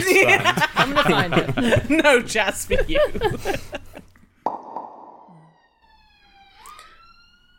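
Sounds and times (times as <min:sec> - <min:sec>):
laughter: 0:00.0 - 0:04.1
speech: 0:00.2 - 0:03.9
emergency vehicle siren wailing outside: 0:05.2 - 0:07.5.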